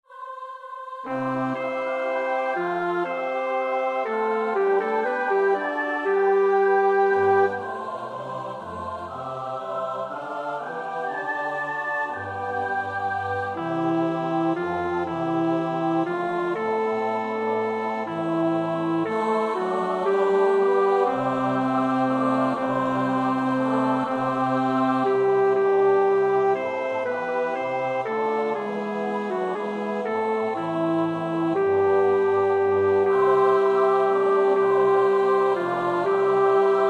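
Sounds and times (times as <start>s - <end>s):
bass voice singing a carol verse: 1.1s - 36.8s.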